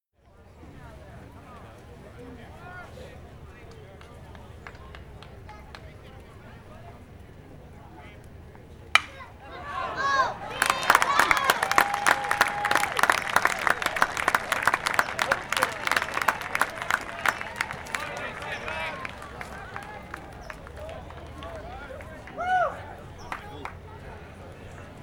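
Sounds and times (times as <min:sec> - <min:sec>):
baseball stadium crowd: 0:00.3 - 0:25.0.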